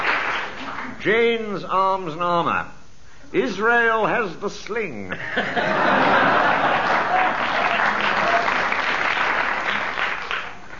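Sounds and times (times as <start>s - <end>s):
audience applause: 0.0s - 1.0s, 5.9s - 10.7s
speech: 1.0s - 6.5s
laughter: 5.1s - 8.7s.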